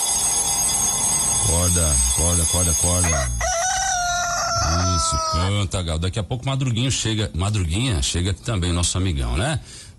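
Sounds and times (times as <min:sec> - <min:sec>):
alarm clock metallic bell ringing: 0:00.0 - 0:04.9
speech: 0:01.5 - 0:03.5, 0:04.6 - 0:09.9.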